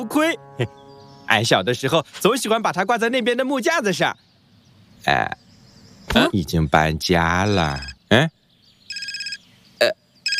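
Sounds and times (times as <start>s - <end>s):
speech: 0.0s - 4.3s, 5.0s - 5.4s, 6.1s - 8.4s, 9.8s - 10.0s
electronic telephone ringtone: 8.9s - 9.4s.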